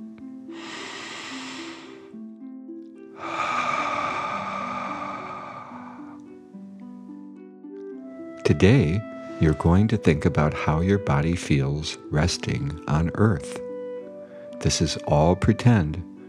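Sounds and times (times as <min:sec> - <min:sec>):
gentle steady music tones: 0:00.0 - 0:16.2
deep breath in and out for a guided meditation: 0:00.5 - 0:02.2, 0:03.2 - 0:06.4
speech: 0:08.5 - 0:13.6, 0:14.6 - 0:16.1.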